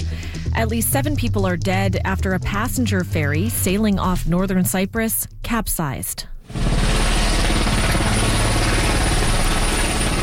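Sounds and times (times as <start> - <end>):
speech: 0.6 - 6.6
military helicopter rotor thumping while touching down at a dock: 6.4 - 10.2.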